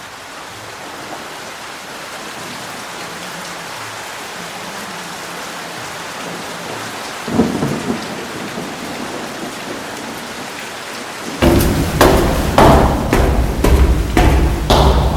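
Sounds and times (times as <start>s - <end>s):
steady rain falling: 0.0s - 15.1s
thunder rumbling: 11.4s - 15.1s.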